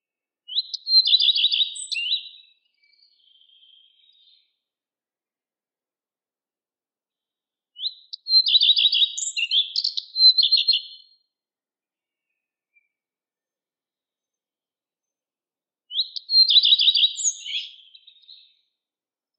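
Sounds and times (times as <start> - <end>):
lepalind singing in spring: 0.5 - 4.7, 7.8 - 11.2, 15.9 - 18.8.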